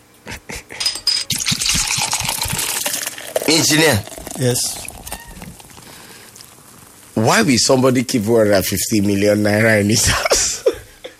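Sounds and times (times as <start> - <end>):
glassy clinks and taps: 0.8 - 2.3
rhythmic glugging of beer pouring: 0.8 - 7.2
cold beer pouring and fizzing into a glass: 0.9 - 7.7
speech: 3.5 - 4.9, 7.2 - 10.4.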